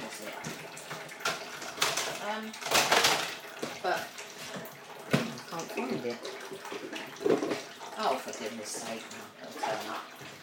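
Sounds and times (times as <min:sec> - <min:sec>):
plastic containers and lids rummaged in a cupboard: 0:00.3 - 0:07.8
speech: 0:08.5 - 0:10.4.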